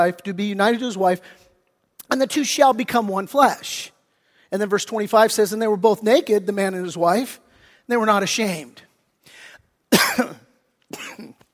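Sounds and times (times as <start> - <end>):
speech: 0.0 - 1.5, 2.1 - 11.0
person coughing in harsh sputtering bursts: 9.9 - 11.5.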